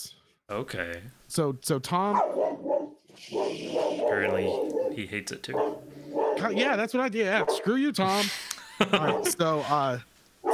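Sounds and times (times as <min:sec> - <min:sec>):
speech: 0:00.0 - 0:02.4, 0:03.2 - 0:05.8, 0:06.4 - 0:10.1
dog howl-like bark: 0:02.1 - 0:06.8, 0:07.4 - 0:07.7
dog barking: 0:02.1 - 0:07.8, 0:09.0 - 0:09.3
laughter: 0:08.1 - 0:10.0.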